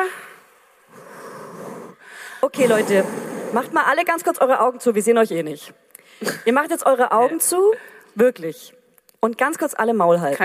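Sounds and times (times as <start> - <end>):
group taking a deep breath: 0.0 - 3.8
speech: 2.4 - 10.4.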